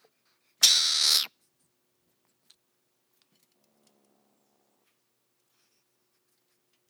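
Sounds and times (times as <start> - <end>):
mongoose hissing: 0.6 - 1.3.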